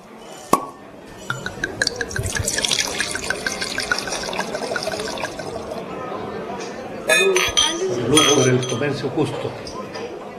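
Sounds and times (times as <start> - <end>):
faint voices of vineyard workers celebrating the grape harvest: 0.0 - 10.3
glassware clinking: 1.1 - 5.8, 7.1 - 9.0
Cabernet Sauvignon wine glugging into glasses: 1.1 - 5.9.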